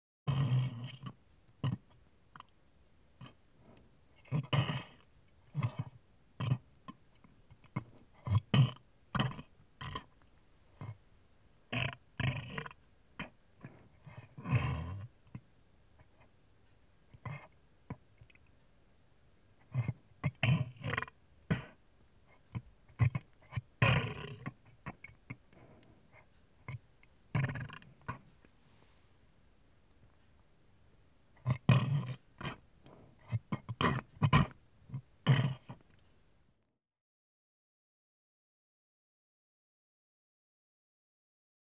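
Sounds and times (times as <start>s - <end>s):
pig: 0.3s - 2.6s, 3.2s - 11.0s, 11.7s - 16.4s, 17.1s - 18.5s, 19.6s - 28.9s, 31.4s - 36.1s.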